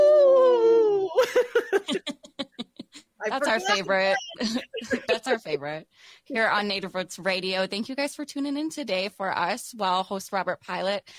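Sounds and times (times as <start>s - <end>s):
person imitating a wolf howl: 0.0s - 1.2s
laughter: 1.2s - 5.5s
speech: 3.3s - 11.1s.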